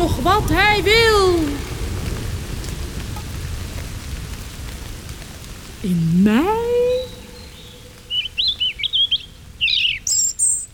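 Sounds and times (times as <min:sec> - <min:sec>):
speech: 0:00.0 - 0:01.7, 0:05.8 - 0:07.2
low rumble: 0:00.0 - 0:10.7
bird singing warbling chirps and whistled notes: 0:05.9 - 0:10.7.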